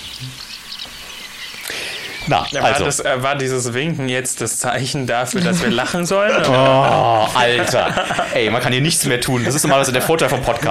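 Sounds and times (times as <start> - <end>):
faint high bird chirps: 0.0 - 2.9
steady hiss of outdoor noise: 0.0 - 10.6
laughter: 1.7 - 3.2, 5.1 - 10.6
speech: 2.3 - 10.6.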